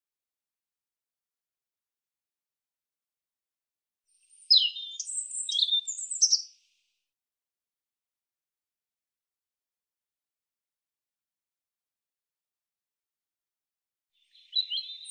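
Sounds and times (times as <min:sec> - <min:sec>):
European robin singing a thin high warbled phrase: 0:04.3 - 0:06.6, 0:14.2 - 0:15.1.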